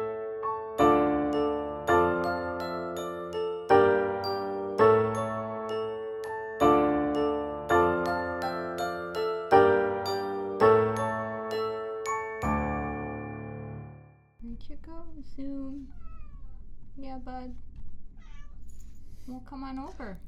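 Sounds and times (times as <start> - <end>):
short tinkling musical jingle: 0.8 - 14.1
young male cat meowing weakly: 15.8 - 16.6, 18.2 - 18.7.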